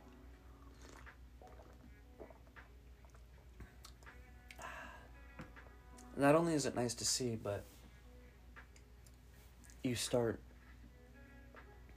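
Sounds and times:
low steady hum: 0:00.0 - 0:11.9
person sipping a drink with slurping and swallowing: 0:00.6 - 0:04.8
speech: 0:06.2 - 0:07.7, 0:09.8 - 0:10.5.

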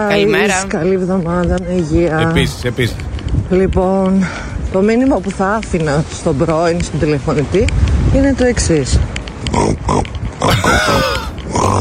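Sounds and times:
speech: 0:00.0 - 0:11.2
person imitating pig grunts, oinks and squeals in a voicemail message: 0:10.4 - 0:11.7.

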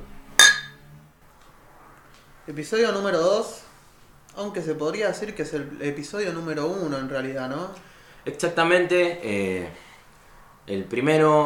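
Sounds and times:
glasses clinking in a toast: 0:00.4 - 0:00.8
speech: 0:02.5 - 0:03.7, 0:04.4 - 0:09.9, 0:10.6 - 0:11.4.

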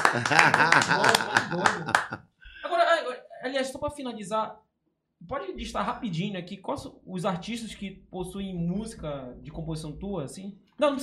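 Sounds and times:
hands clapping in applause: 0:00.0 - 0:02.2
voices talking or laughing: 0:00.0 - 0:02.6
speech: 0:00.1 - 0:02.3, 0:03.5 - 0:11.0.

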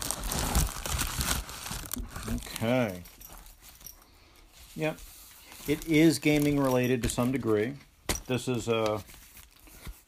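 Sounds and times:
paper mail envelope from an online retailer torn open: 0:00.0 - 0:02.6
paper crinkling and rustling: 0:00.0 - 0:03.9, 0:04.5 - 0:10.0
speech: 0:02.6 - 0:03.2, 0:04.8 - 0:09.2.

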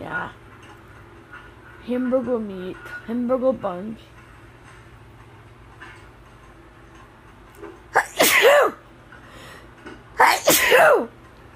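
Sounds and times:
speech: 0:01.8 - 0:04.2
mother sneezing loudly: 0:08.0 - 0:08.8, 0:10.2 - 0:11.1.

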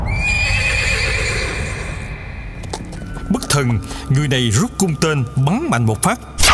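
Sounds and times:
horse neighing: 0:00.1 - 0:02.3
speech: 0:03.6 - 0:06.4.

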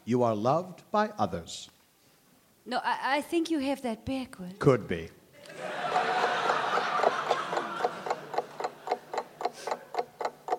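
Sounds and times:
speech: 0:00.1 - 0:01.8, 0:02.6 - 0:05.8
laughter: 0:05.4 - 0:09.7
clock ticking: 0:06.7 - 0:10.5.

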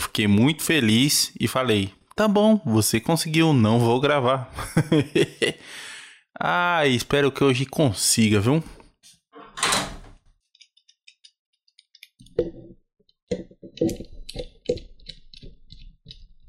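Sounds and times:
speech: 0:00.2 - 0:08.8, 0:13.8 - 0:14.1
laughter: 0:04.5 - 0:05.6
clunks, rattles and knocks of a door settling: 0:09.4 - 0:10.2
door opening downstairs in the building: 0:09.4 - 0:10.3.

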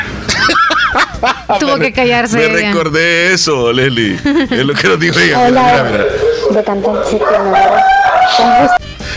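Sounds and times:
laughter: 0:00.2 - 0:02.0, 0:04.1 - 0:06.5
speech: 0:01.2 - 0:08.8
rooster crowing: 0:06.0 - 0:08.9.

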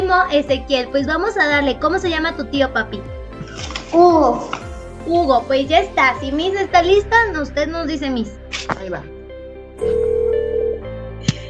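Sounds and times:
speech: 0:00.1 - 0:09.1, 0:09.8 - 0:10.2
telephone ringback tone as a call is placed: 0:09.8 - 0:10.9.

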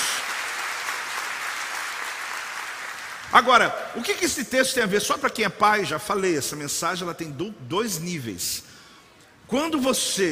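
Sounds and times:
crowd applauding: 0:00.0 - 0:03.5
speech: 0:03.3 - 0:08.8, 0:09.5 - 0:10.3.

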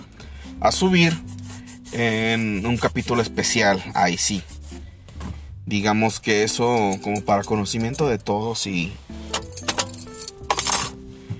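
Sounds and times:
speech: 0:00.6 - 0:01.3, 0:01.9 - 0:04.5, 0:05.7 - 0:09.1
keys jangling: 0:06.7 - 0:08.4, 0:09.3 - 0:11.0.

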